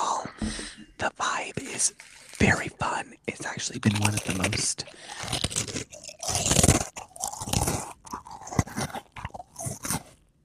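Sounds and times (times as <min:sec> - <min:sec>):
speech: 0:00.4 - 0:06.8
crunchy chewing against the microphone: 0:03.7 - 0:10.3.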